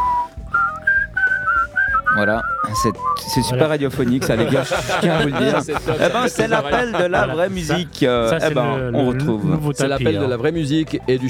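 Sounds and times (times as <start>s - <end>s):
person whistling a film theme tune: 0.0s - 3.6s
speech: 2.2s - 11.2s
laughter: 3.9s - 8.7s.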